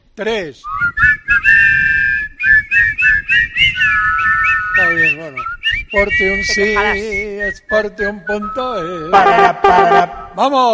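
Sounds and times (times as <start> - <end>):
speech: 0.2 - 10.7
people whistling a tune: 0.7 - 9.2.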